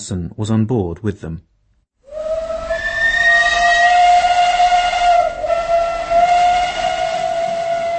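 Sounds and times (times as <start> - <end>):
speech: 0.0 - 1.5
steam locomotive whistle at Prague main station: 2.1 - 7.9.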